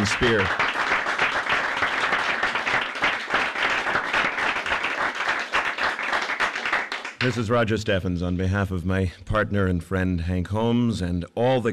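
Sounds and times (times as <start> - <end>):
speech: 0.0 - 0.6, 7.2 - 11.7
crowd applauding: 0.0 - 7.5.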